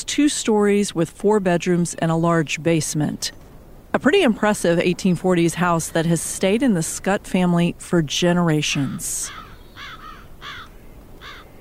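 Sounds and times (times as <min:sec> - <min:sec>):
speech: 0:00.0 - 0:03.4, 0:04.0 - 0:09.4
low outdoor rumble: 0:00.0 - 0:11.5
crows cawing in a massive willow tree: 0:09.3 - 0:11.5.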